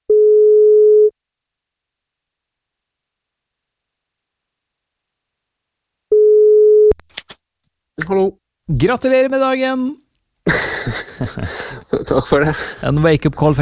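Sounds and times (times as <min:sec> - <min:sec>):
telephone ringback tone while placing a call: 0:00.1 - 0:01.1, 0:06.1 - 0:07.0
speech: 0:08.1 - 0:13.6
laughter: 0:10.4 - 0:12.9.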